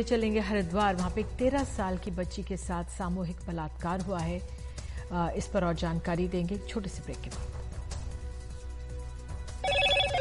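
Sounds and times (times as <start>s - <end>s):
speech: 0.0s - 7.6s
Motorola smartphone ringtone: 9.6s - 10.2s.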